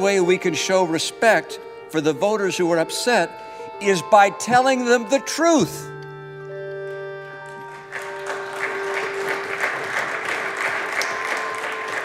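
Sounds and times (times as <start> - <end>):
speech: 0.0 - 5.9
many people applauding in a large room: 6.9 - 12.0.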